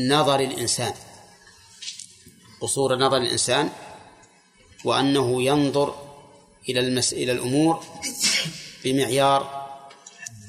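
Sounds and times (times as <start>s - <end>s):
speech: 0.0s - 1.1s, 2.6s - 3.9s, 4.8s - 9.6s
sneeze: 8.0s - 8.8s.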